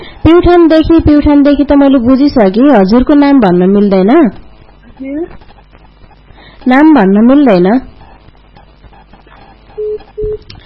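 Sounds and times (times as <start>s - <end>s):
speech: 0.3s - 4.4s, 5.0s - 5.4s, 6.6s - 7.9s
telephone dialing tones as a caller punches in a number: 9.7s - 10.4s.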